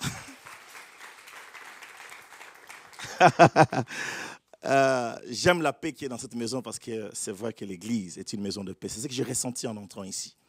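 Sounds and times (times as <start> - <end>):
scattered cheers and voices in a church: 0.0 - 3.4
church audience applauding in a reverberant church: 0.0 - 4.0
laughter: 3.0 - 3.9
speech: 3.2 - 10.4.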